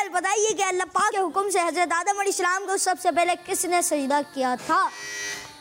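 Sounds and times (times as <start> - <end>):
speech: 0.2 - 5.3
quiz buzzer bright harmonic electronic tone: 4.9 - 5.5.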